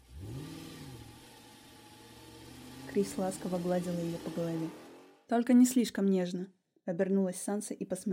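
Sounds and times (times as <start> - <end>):
car engine revving as the vehicle accelerates: 0.0 - 5.3
speech: 2.9 - 8.1.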